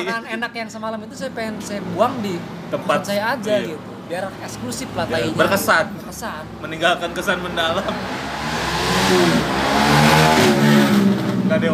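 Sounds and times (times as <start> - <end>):
speech: 0.0 - 8.4, 9.0 - 9.6, 11.6 - 11.7
motorcycle engine revving through loud exhaust: 6.9 - 11.7.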